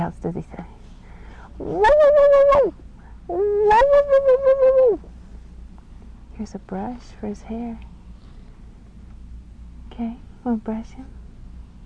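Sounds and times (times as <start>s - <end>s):
speech: 0.0s - 0.6s, 1.6s - 5.1s, 6.4s - 7.9s, 10.0s - 11.2s
child imitating dog yelps: 1.6s - 5.0s.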